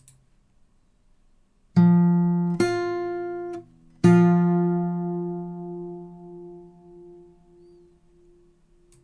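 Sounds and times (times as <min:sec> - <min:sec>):
guitar playing octaves: 0:01.8 - 0:08.9.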